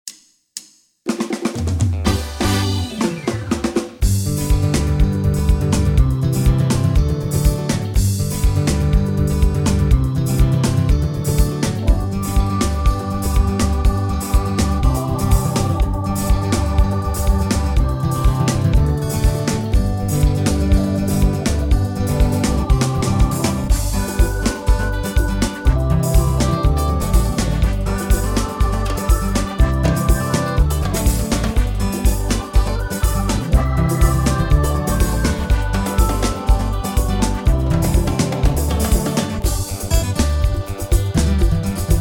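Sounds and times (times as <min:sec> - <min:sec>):
township jive music: 0:02.0 - 0:42.0.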